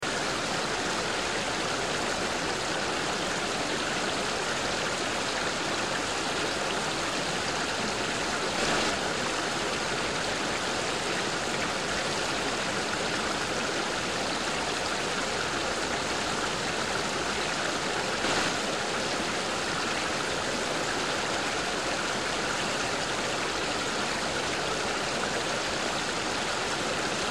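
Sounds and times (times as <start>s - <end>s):
fast mountain stream: 0.0s - 27.3s.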